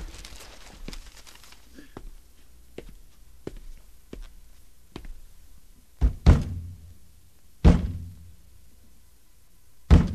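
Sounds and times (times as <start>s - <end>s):
hand thumping the wooden cabinet of a failing radio: 6.0s - 6.7s, 9.9s - 10.1s.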